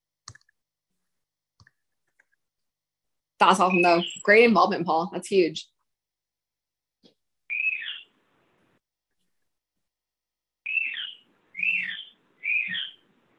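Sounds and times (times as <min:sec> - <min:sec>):
speech: 0:03.4 - 0:05.7
Australian bird whistled calls: 0:03.7 - 0:04.2, 0:07.5 - 0:08.1, 0:10.6 - 0:13.0.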